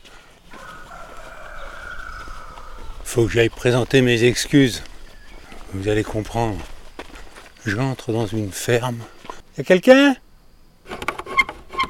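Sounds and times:
rooster crowing: 0.5s - 3.1s
speech: 3.1s - 4.9s, 5.7s - 6.7s, 7.6s - 10.2s.

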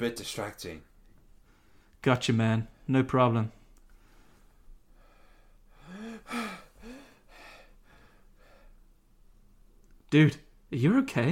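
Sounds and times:
speech: 0.0s - 0.9s, 2.0s - 3.6s, 10.1s - 11.2s
heavy gasping breaths with a strained voiced edge: 3.9s - 8.9s.

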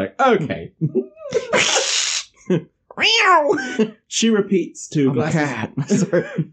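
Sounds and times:
speech: 0.0s - 6.5s
man laughing: 0.8s - 2.6s, 3.3s - 4.1s, 5.0s - 6.5s
girl imitating a cat hiss: 1.4s - 2.3s.

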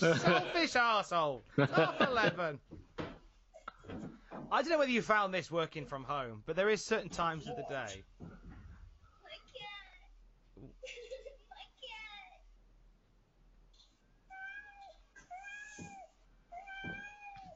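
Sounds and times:
laughter: 0.0s - 0.8s, 1.5s - 2.6s
speech: 0.0s - 2.8s, 3.9s - 8.4s
faint noise: 0.0s - 17.5s
cat meowing with drawn-out wavering cries: 16.6s - 17.5s.

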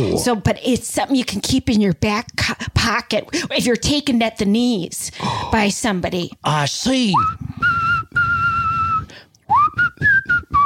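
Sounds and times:
speech: 0.2s - 7.5s
person whistling a short tune: 7.2s - 10.6s.

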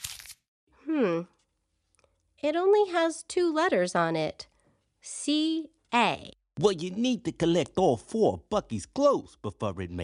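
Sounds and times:
paper clue being unfolded and crinkled: 0.0s - 0.4s
speech: 1.0s - 1.4s, 2.4s - 10.0s.

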